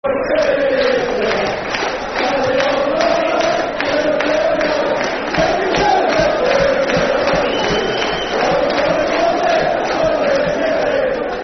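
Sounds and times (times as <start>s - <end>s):
football crowd chanting: 0.0s - 11.4s.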